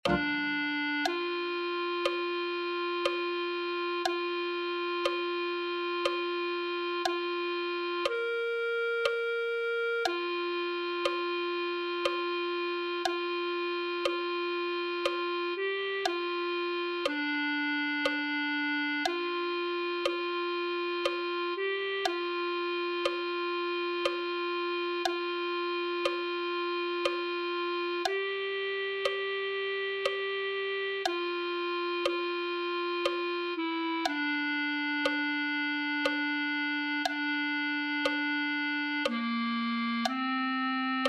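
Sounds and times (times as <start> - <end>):
clarinet: 0.0 - 41.0.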